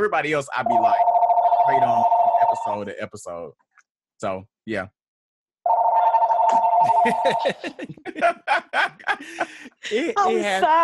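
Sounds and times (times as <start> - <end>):
speech: 0.0 - 5.0, 6.8 - 10.8
landline telephone ringing with a buzzing electronic tone: 0.6 - 2.8, 5.7 - 7.6
people chuckling: 6.5 - 10.5.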